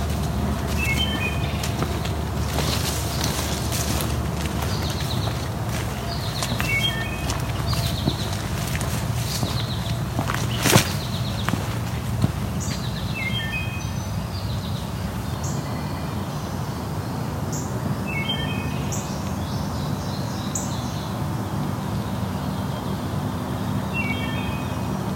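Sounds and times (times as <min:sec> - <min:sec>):
steady low background rumble: 0:00.0 - 0:15.4
wood thrush singing among dogwoods and hawthorns in Dundas Valley, Ontario: 0:00.0 - 0:25.0.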